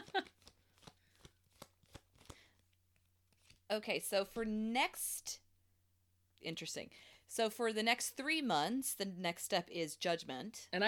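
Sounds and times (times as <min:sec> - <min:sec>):
tarot cards falling and slapping together during shuffling: 0:00.0 - 0:03.7
speech: 0:03.7 - 0:05.4, 0:06.4 - 0:10.8.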